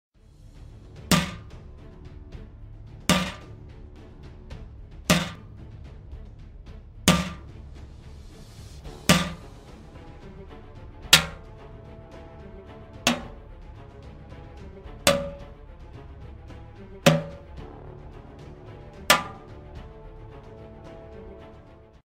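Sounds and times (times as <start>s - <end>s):
armor hits: 1.1s - 1.5s, 3.1s - 3.5s, 5.1s - 5.5s, 7.1s - 7.5s, 9.1s - 9.5s, 11.1s - 11.4s, 13.1s - 13.4s, 15.1s - 15.4s, 17.1s - 17.5s, 19.1s - 19.5s.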